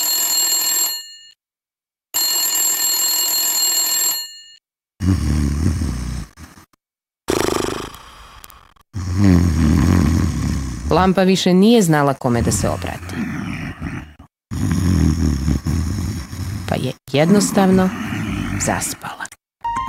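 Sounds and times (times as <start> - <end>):
telephone ringing: 0.0 - 1.4, 2.2 - 4.6
speech: 5.0 - 6.3, 9.2 - 9.8, 10.9 - 13.3, 17.2 - 19.1
low rough rasping sounds: 5.0 - 11.1, 12.4 - 18.8.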